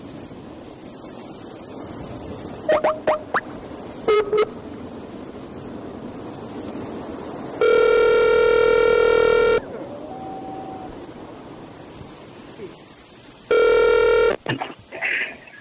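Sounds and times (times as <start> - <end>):
quiet hiss: 0.0 - 7.6, 9.6 - 13.5
telephone ringing with a steady electronic tone: 7.6 - 9.6, 13.5 - 14.4.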